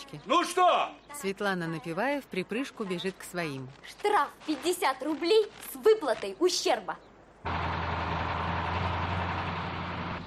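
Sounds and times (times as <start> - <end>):
speech: 0.1 - 7.6
truck engine drone as it races along a city avenue: 7.4 - 10.2.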